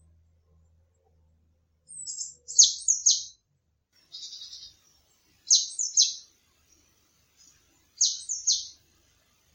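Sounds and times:
Eurasian blue tit calling thin high notes with buzzy trills: 1.9s - 3.4s, 4.1s - 6.3s, 7.4s - 8.8s.

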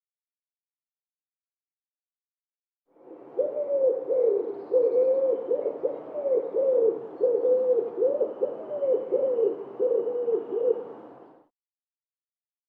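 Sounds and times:
wood pigeon cooing: 3.1s - 11.0s.

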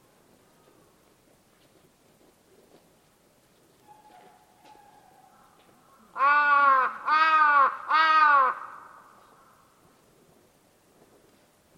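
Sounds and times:
bird giving harsh drawn-out caws: 4.8s - 9.6s.

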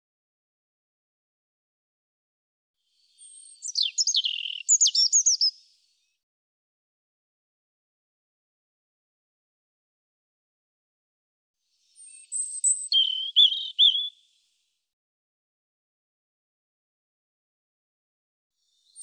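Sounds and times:
European robin song: 2.9s - 5.8s, 11.8s - 14.4s.

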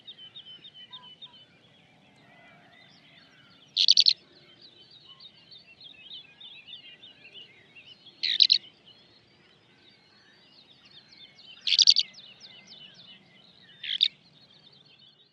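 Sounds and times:
faint continuous high twittering: 0.0s - 15.3s
Eurasian skylark rough chirrup calls: 3.7s - 4.2s, 8.2s - 8.6s, 11.6s - 12.2s, 13.8s - 14.2s.

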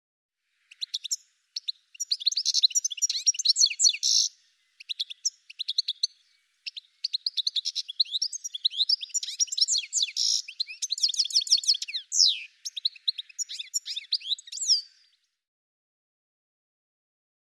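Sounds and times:
bird chirping: 0.5s - 15.4s.

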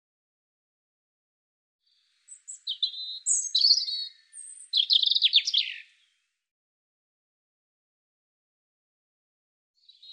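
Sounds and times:
European robin singing varied phrases with whistles and trill: 1.9s - 6.2s.

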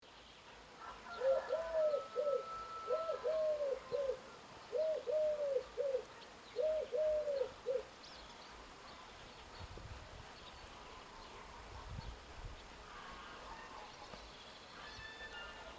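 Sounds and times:
steady background hiss: 0.0s - 15.7s
bird cooing in soft three-note phrases: 0.8s - 7.9s.

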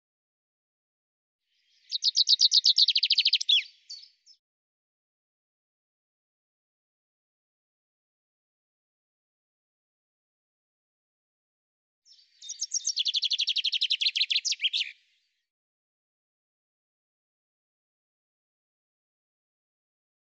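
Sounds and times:
common chaffinch singing: 1.5s - 4.4s, 12.1s - 15.3s.

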